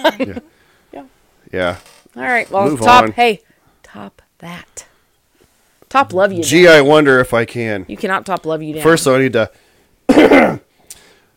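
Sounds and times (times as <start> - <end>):
speech: 0.0 - 4.9, 5.9 - 10.6
throat clearing: 10.1 - 10.7.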